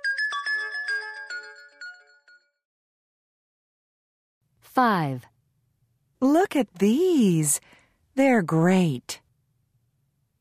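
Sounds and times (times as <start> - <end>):
cell phone ringtone playing bright electronic melody: 0.0 - 2.6
speech: 4.8 - 5.3, 6.2 - 9.2.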